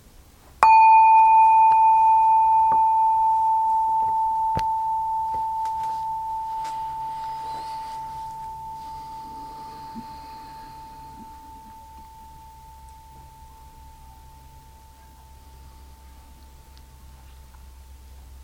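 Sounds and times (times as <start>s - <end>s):
meditation bell ringing: 0.6s - 17.3s.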